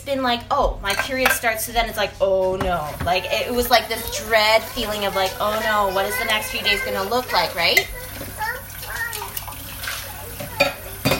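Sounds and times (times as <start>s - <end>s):
speech: 0.0s - 8.0s
water running steadily into a kettle: 2.6s - 11.1s.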